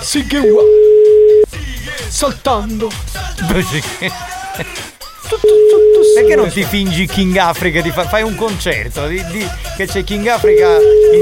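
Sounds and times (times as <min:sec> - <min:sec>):
speech: 0:00.1 - 0:01.0, 0:02.0 - 0:11.1
electronic telephone ringback tone on an outgoing call: 0:00.4 - 0:01.5, 0:05.5 - 0:06.5, 0:10.5 - 0:11.1
laughter: 0:03.3 - 0:06.6.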